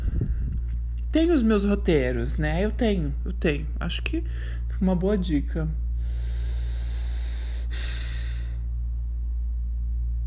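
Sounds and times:
steady low hum: 0:00.0 - 0:10.2
speech: 0:01.2 - 0:06.3
man breathing in ASMR recording: 0:04.3 - 0:04.7, 0:06.0 - 0:08.7.

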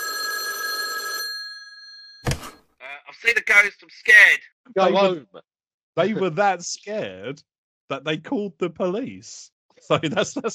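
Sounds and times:
old-fashioned telephone bell ringing: 0:00.0 - 0:02.2
short thump: 0:02.2 - 0:02.6
speech: 0:03.2 - 0:10.5
laughter: 0:09.8 - 0:10.5.

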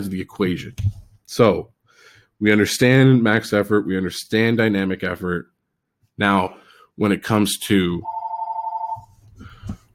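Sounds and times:
speech: 0:00.0 - 0:01.7, 0:02.4 - 0:05.5, 0:06.2 - 0:08.2
phone ringing with a bright warbling ring: 0:08.0 - 0:09.2.

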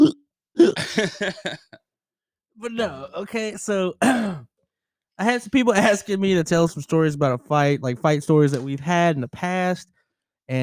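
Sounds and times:
person imitating hiccups: 0:00.0 - 0:01.1
laughter: 0:00.6 - 0:01.8
speech: 0:01.0 - 0:01.8, 0:02.6 - 0:04.5, 0:05.2 - 0:10.6.

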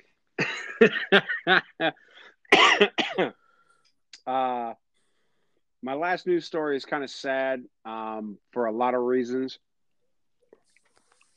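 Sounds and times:
loud fit of harsh hacking coughing: 0:00.4 - 0:01.8, 0:02.5 - 0:03.4
speech: 0:00.8 - 0:03.4, 0:04.2 - 0:04.8, 0:05.8 - 0:09.7.

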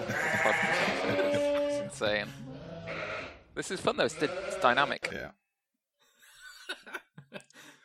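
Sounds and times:
laughter: 0:00.0 - 0:02.4, 0:06.2 - 0:07.8
sheep bleating with a wavering nasal cry: 0:00.0 - 0:05.1
speech: 0:02.0 - 0:03.0, 0:03.6 - 0:05.4.

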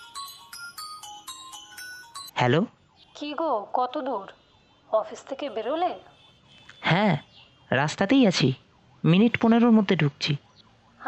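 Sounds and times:
mobile phone ringing with a melodic electronic ringtone: 0:00.0 - 0:02.4
speech: 0:02.4 - 0:06.1, 0:06.8 - 0:10.4.

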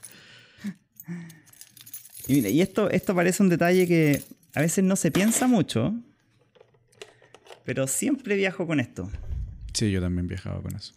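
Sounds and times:
speech: 0:00.6 - 0:01.3, 0:02.3 - 0:06.1, 0:07.7 - 0:10.9
bunch of keys with camera-accessory tool jingling on a keyring: 0:00.8 - 0:04.8.

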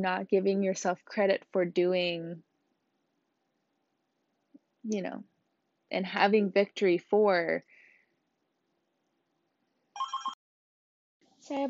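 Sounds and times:
speech: 0:00.0 - 0:02.5, 0:04.8 - 0:05.3, 0:05.9 - 0:07.7, 0:11.5 - 0:11.6
house phone electronic ring: 0:10.0 - 0:10.4.

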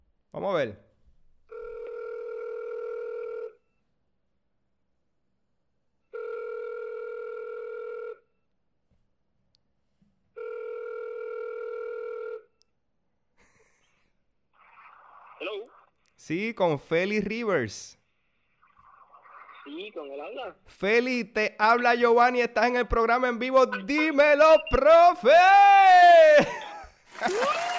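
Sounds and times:
speech: 0:00.3 - 0:00.9, 0:16.3 - 0:18.0, 0:19.8 - 0:26.6, 0:27.2 - 0:27.6
phone line sounds: 0:01.5 - 0:03.6, 0:06.2 - 0:08.2, 0:23.6 - 0:25.1, 0:26.4 - 0:27.7
telephone ringing for an incoming call: 0:01.5 - 0:03.6, 0:06.1 - 0:08.3, 0:10.4 - 0:12.5
laughter: 0:26.3 - 0:27.7.

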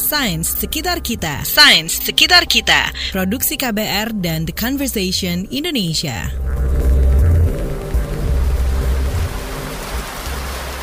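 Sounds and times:
speech: 0:00.1 - 0:06.6
rain falling on a surface: 0:06.6 - 0:10.8.

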